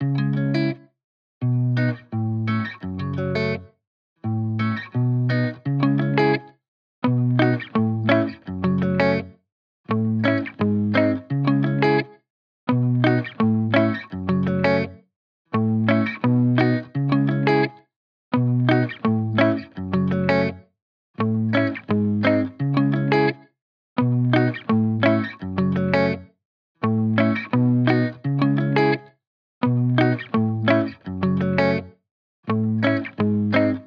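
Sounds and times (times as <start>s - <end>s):
main guitar loop in C# minor: 0.0s - 0.8s, 1.4s - 3.6s, 4.2s - 6.4s, 7.0s - 9.3s, 9.9s - 12.1s, 12.7s - 14.9s, 15.6s - 17.8s, 18.4s - 20.6s, 21.2s - 23.4s, 24.0s - 26.2s, 26.8s - 31.9s, 32.5s - 33.8s.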